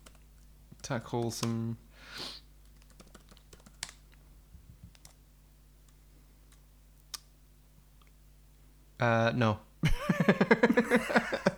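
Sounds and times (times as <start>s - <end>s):
typing on a computer keyboard: 0.0s - 1.6s, 2.6s - 4.2s, 4.8s - 5.2s
steady low hum: 0.0s - 11.5s
speech: 0.9s - 2.4s, 9.0s - 11.5s
laughter: 9.8s - 11.5s.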